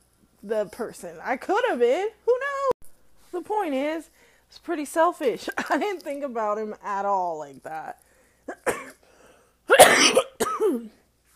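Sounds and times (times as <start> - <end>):
speech: 0.4 - 2.3, 3.6 - 8.8, 10.1 - 11.0
person coughing after choking: 8.5 - 9.1, 9.7 - 11.0.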